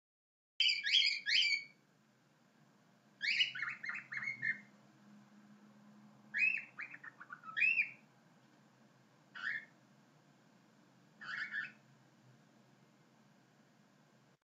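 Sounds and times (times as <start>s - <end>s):
cockatiel giving chirpy warbling whistled calls: 0.6s - 1.8s, 3.2s - 4.7s, 6.3s - 8.1s, 9.3s - 9.7s, 11.2s - 11.8s
faint low hum: 0.6s - 14.4s.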